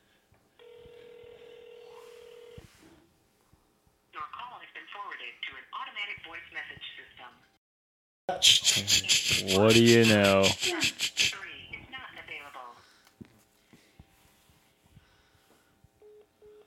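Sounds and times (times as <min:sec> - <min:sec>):
telephone call ringing tone: 0:00.6 - 0:02.6
speech: 0:04.9 - 0:07.5, 0:08.3 - 0:11.4
laughter: 0:08.4 - 0:11.4.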